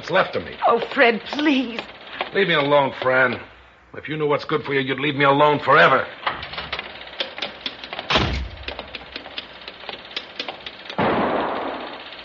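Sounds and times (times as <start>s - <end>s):
sharp ticking or tapping: 0.0s - 3.4s, 6.7s - 11.0s
speech: 0.1s - 6.2s
gunshots: 8.1s - 8.6s, 11.0s - 12.0s.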